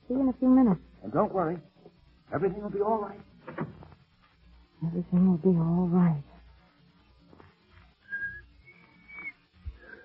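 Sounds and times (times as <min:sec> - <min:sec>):
soft noise: 0:00.0 - 0:10.0
speech: 0:00.1 - 0:01.7, 0:02.3 - 0:03.8, 0:04.8 - 0:06.3
person attempting to whistle: 0:08.1 - 0:10.0.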